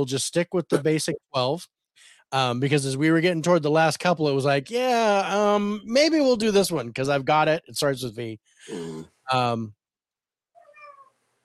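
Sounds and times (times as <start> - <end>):
speech: 0.0 - 9.8
cat meowing: 10.6 - 11.1.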